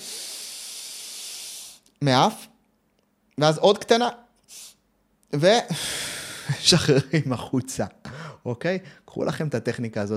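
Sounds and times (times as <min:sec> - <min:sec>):
deep inhale demonstrating a calming breathing technique: 0:00.0 - 0:01.9, 0:05.7 - 0:06.6
speech: 0:02.0 - 0:02.5, 0:03.4 - 0:04.7, 0:05.3 - 0:10.1.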